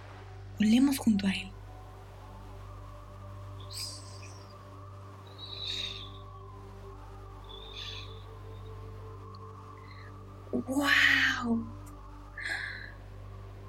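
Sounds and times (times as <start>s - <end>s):
constant low hum: 0.0s - 13.6s
speech: 0.6s - 1.6s, 10.6s - 11.7s
bird calling: 3.6s - 4.6s, 5.2s - 8.9s.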